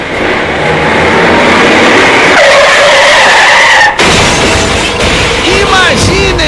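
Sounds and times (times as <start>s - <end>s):
car tires screeching in a long dense skid on a road: 0.2s - 4.6s
car crashing into the back of a truck: 4.0s - 5.5s
warbling rattling debris after a car crash: 4.0s - 6.3s.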